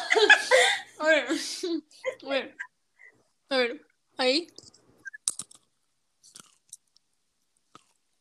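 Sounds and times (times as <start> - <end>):
laughter: 0.0 - 0.8
speech: 4.3 - 4.5
crunchy chewing: 5.0 - 8.0.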